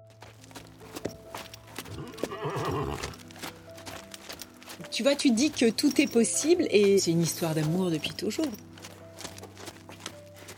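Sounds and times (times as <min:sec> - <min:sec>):
hooves clip-clopping on a hard surface: 0:00.0 - 0:10.5
horse whinnying with a wavering drawn-out neigh: 0:01.9 - 0:03.2
speech: 0:05.0 - 0:08.7.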